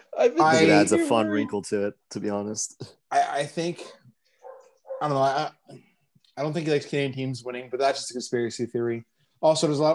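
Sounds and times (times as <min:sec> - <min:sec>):
speech: 0:00.2 - 0:04.0, 0:05.0 - 0:09.9
dog barking: 0:04.4 - 0:05.2.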